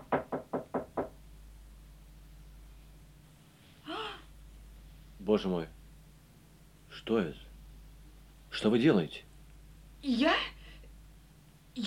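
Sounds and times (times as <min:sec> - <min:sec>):
soft knocks on a door: 0:00.0 - 0:01.2
speech: 0:05.3 - 0:05.8, 0:07.0 - 0:07.5, 0:08.6 - 0:09.3, 0:10.0 - 0:10.5.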